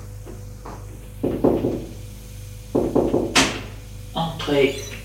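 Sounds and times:
knocking on the wooden door of an office: 1.2 - 1.9, 2.8 - 3.6
speech: 4.5 - 4.8.

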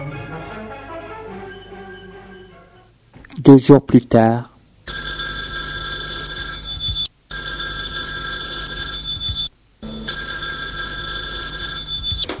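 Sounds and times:
speech: 3.5 - 4.5
telephone ringing with a loud continuous electric bell: 4.9 - 12.3.

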